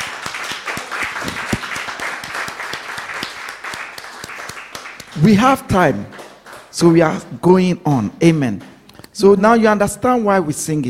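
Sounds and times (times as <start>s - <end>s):
congregation applause in a reverberant room: 0.0s - 6.7s
speech: 5.2s - 6.2s, 6.8s - 10.8s.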